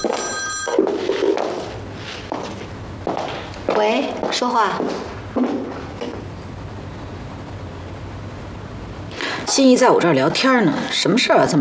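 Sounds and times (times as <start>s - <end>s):
telephone ringing with an incoming call: 0.0s - 1.7s
speech: 3.8s - 5.6s, 9.6s - 11.5s.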